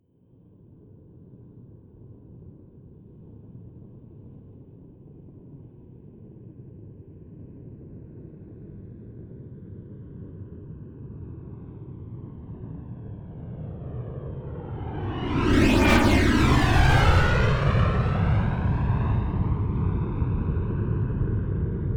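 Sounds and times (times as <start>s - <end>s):
A-10 Thunderbolt military jet flyby left to right close: 13.6s - 21.8s.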